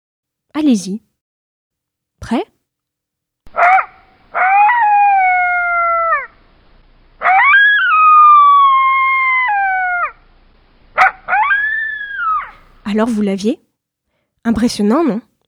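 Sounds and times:
speech: 0.6 - 1.1, 2.2 - 2.6, 13.0 - 13.7, 14.4 - 15.3
desert coyote howling: 3.5 - 6.6, 7.2 - 10.3, 10.9 - 12.8.

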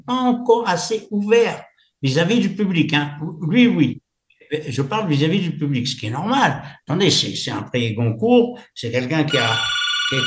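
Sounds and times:
speech: 0.1 - 10.2
landline telephone ringing: 9.3 - 10.2.

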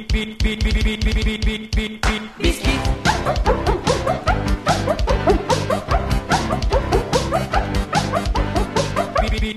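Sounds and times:
speech: 0.1 - 2.0
small dogs barking and yipping: 3.0 - 9.4.

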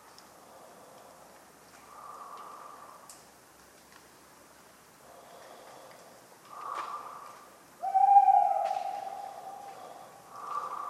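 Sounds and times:
tawny owl hooting on a cold autumn night: 7.8 - 10.8.

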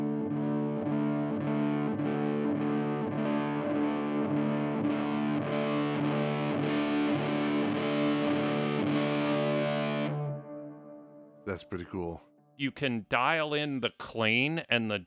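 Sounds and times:
electric guitar chords through a reverb pedal with distortion, shoegaze style: 0.0 - 11.4
speech: 11.5 - 15.0.

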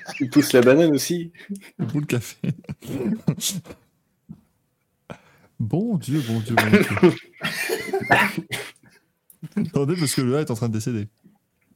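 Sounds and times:
laughter: 0.0 - 0.7, 6.5 - 8.8, 9.4 - 10.3
speech: 0.1 - 4.4, 5.1 - 8.8, 9.5 - 11.2
person coughing harshly: 2.8 - 3.8, 6.5 - 8.8.

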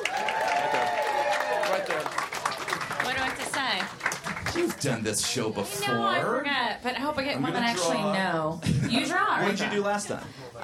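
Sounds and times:
cheering and whooping voices: 0.0 - 2.1
crowd applauding: 0.0 - 5.6
speech: 4.6 - 10.4.

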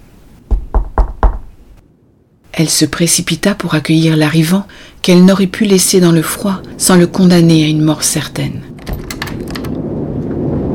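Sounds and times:
soft knocks on a wooden door: 0.5 - 1.5
speech: 2.6 - 8.7.

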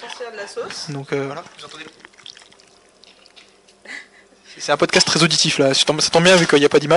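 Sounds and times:
speech: 0.1 - 2.2, 4.6 - 6.9
sauce pouring and splattering over cooked quail: 1.4 - 3.7.

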